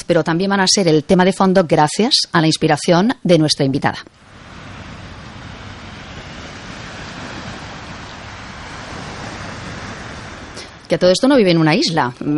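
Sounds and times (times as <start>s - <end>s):
speech: 0.1s - 4.3s, 10.9s - 12.3s
steady roar of sea surf: 3.6s - 12.3s.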